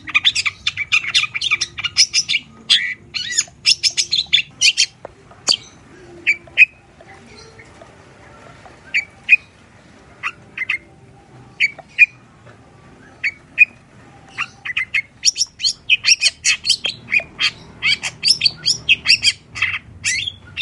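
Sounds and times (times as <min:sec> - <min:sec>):
long-tailed shrike scratchy squawking chatter: 0:00.0 - 0:20.6.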